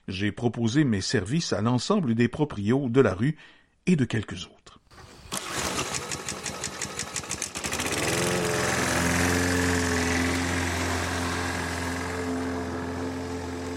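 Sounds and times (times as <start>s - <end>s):
speech: 0.1s - 4.7s
lawn mower engine sputtering and droning: 5.0s - 13.7s.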